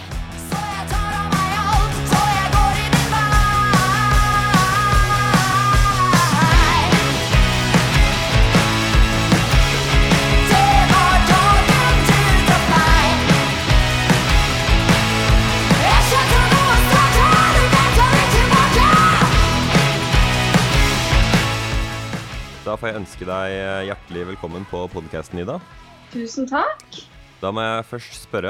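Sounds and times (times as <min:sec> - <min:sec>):
full band playing a song: 0:00.0 - 0:22.4
drums driving a continuous beat: 0:00.0 - 0:24.1
speech: 0:23.0 - 0:28.4.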